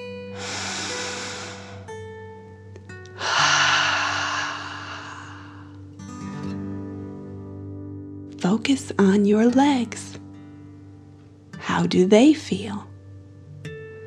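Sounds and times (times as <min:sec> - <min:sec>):
soft sustained music: 0:00.0 - 0:14.0
slow deep breathing in and out during a guided relaxation: 0:00.3 - 0:02.1, 0:03.2 - 0:06.0
speech: 0:08.5 - 0:10.2, 0:11.8 - 0:12.9.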